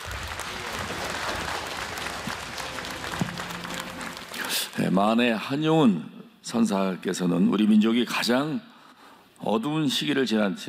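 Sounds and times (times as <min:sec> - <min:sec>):
audience applause: 0:00.0 - 0:04.9
speech: 0:04.8 - 0:08.7, 0:09.4 - 0:10.6.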